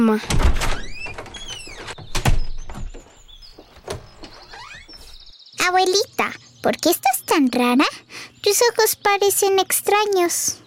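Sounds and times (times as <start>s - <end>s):
speech: 0.0s - 0.7s, 5.7s - 10.6s
door creaking open with a wavering high-pitched squeal: 0.2s - 5.3s.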